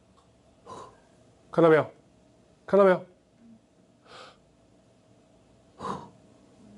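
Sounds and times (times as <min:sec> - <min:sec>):
speech: 0:01.6 - 0:02.0, 0:02.7 - 0:03.1
person inhaling while demonstrating chest breathing: 0:04.0 - 0:04.4.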